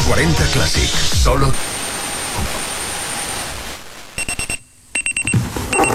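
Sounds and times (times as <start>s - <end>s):
speech: 0.1s - 1.7s
alarm clock ringing with shrill electronic beeps: 4.2s - 5.9s.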